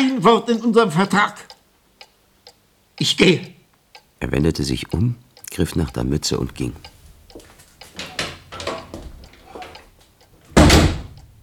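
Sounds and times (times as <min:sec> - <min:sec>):
speech: 0:00.0 - 0:01.5, 0:03.0 - 0:03.6, 0:04.2 - 0:07.0
door opening: 0:07.8 - 0:11.4.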